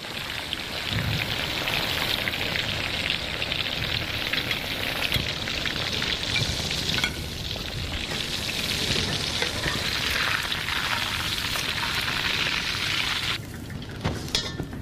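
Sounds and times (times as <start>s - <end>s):
food deep-frying in a pan of hot oil: 0.0s - 14.8s.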